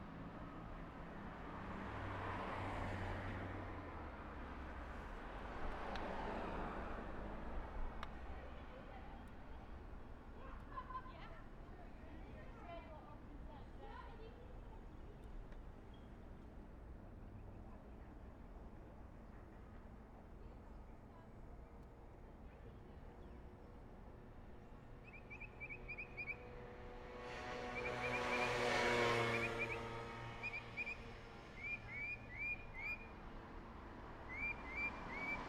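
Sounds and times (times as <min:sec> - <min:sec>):
small town city street ambience in spring: 0:00.0 - 0:35.4.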